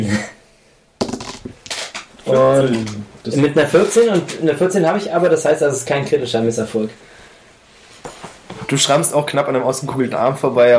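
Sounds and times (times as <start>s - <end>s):
twenty-sided die clattering across a hard tabletop: 1.0s - 2.1s
speech: 2.3s - 7.1s, 8.7s - 10.7s
soft rustle: 7.6s - 9.0s.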